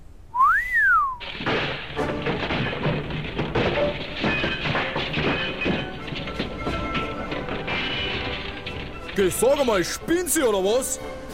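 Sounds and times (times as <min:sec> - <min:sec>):
person whistling on an opera stage: 0:00.3 - 0:01.2
clattering and rumbling of a castle stage set being rebuilt: 0:01.2 - 0:11.3
speech: 0:09.2 - 0:11.1.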